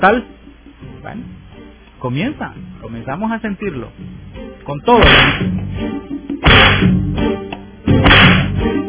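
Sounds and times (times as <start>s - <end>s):
speech: 0.0s - 0.3s, 1.0s - 6.2s, 6.8s - 7.4s
whip cracking lashes: 5.0s - 5.5s, 6.4s - 6.9s, 8.0s - 8.6s.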